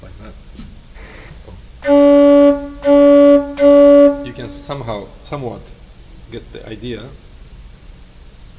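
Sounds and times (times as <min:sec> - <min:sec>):
organ pipe blown at very high wind pressure during voicing: 0:01.8 - 0:05.0
speech: 0:04.4 - 0:07.3.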